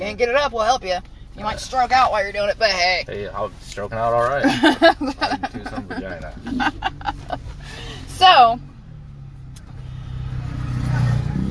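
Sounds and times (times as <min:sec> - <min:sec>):
speech: 0:00.0 - 0:08.7
laughter: 0:04.4 - 0:08.0
motorcycle engine revving as it passes: 0:06.4 - 0:11.4.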